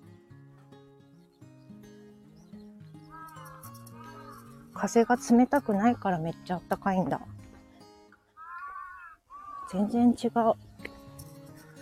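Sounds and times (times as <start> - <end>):
bird calling outdoors on a calm mild day: 1.2 - 6.0, 8.3 - 9.9
speech: 4.8 - 7.4, 9.7 - 10.7.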